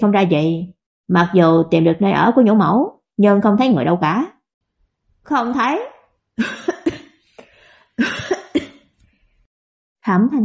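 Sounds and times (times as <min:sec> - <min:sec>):
speech: 0:00.0 - 0:04.4, 0:05.2 - 0:07.0, 0:08.0 - 0:08.4, 0:10.0 - 0:10.4
violent dry coughing: 0:06.4 - 0:07.2, 0:08.0 - 0:09.0
faint breath: 0:07.2 - 0:08.0.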